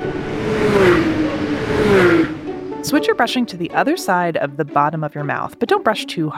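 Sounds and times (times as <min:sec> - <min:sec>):
NASCAR race car engine roaring at high speed: 0:00.0 - 0:04.3
speech: 0:02.9 - 0:06.3.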